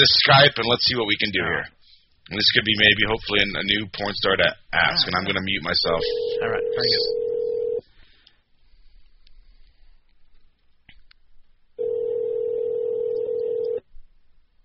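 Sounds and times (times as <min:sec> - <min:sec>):
speech: 0:00.0 - 0:07.2
telephone tone: 0:06.0 - 0:07.8, 0:11.8 - 0:13.8.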